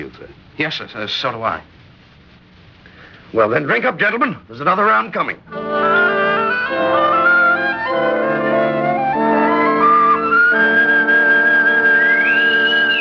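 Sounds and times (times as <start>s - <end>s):
speech: 0.0s - 1.8s, 3.3s - 6.0s
bosun's whistle piping people aboard a ship: 5.5s - 13.0s.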